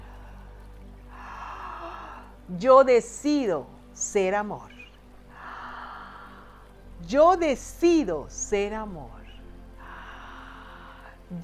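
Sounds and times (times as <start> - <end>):
slow deep breath drawn in: 0.0 - 2.4, 5.3 - 6.8, 9.8 - 11.3
faint steady hum: 0.0 - 11.4
speech: 2.5 - 4.8, 7.0 - 9.2.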